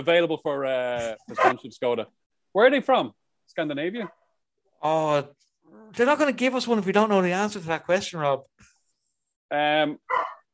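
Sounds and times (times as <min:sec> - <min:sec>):
speech: 0:00.0 - 0:04.2, 0:04.8 - 0:08.7, 0:09.5 - 0:10.3
dog barking: 0:01.4 - 0:01.6, 0:10.1 - 0:10.5.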